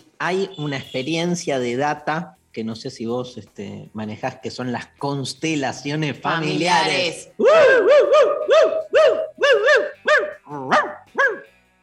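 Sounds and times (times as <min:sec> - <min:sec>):
speech: 0:00.2 - 0:09.2
dog barking loudly with sharp yelping barks: 0:07.6 - 0:11.5.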